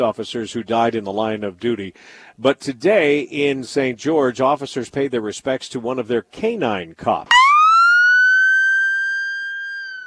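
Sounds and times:
speech: 0.0 - 7.4
police siren wailing: 7.3 - 10.0.

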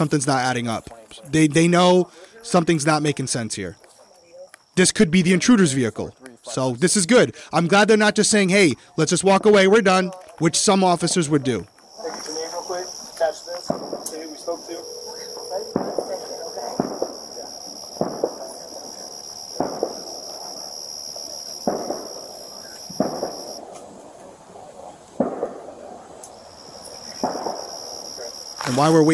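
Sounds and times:
speech: 0.0 - 3.8, 4.8 - 12.3, 28.8 - 29.1
faint voices murmuring: 0.0 - 29.1
fireworks popping on July 6th: 11.6 - 29.1
high-pitched insect-like drone: 11.9 - 23.6.

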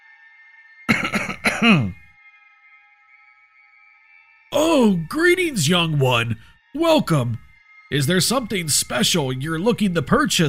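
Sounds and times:
rough raspy throat clearing: 0.9 - 2.0
speech: 1.6 - 2.0, 4.6 - 10.4.

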